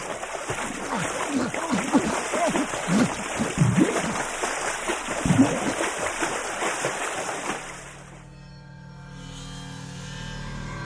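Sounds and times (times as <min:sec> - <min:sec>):
continuous churning water with heavy splashes from violent thrashing: 0:00.0 - 0:08.3.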